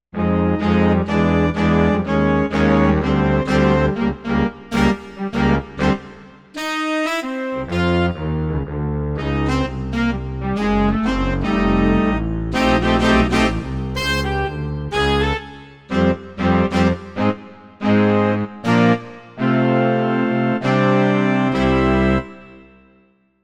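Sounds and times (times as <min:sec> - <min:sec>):
saxophone band playing: 0:00.2 - 0:08.3, 0:09.2 - 0:22.4.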